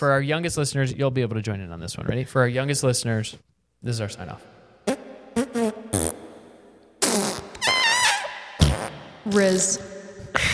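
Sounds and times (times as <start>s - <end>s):
speech: 0.0s - 5.0s, 9.3s - 9.9s
voiced imitation fart noises: 4.9s - 6.4s, 7.0s - 9.1s.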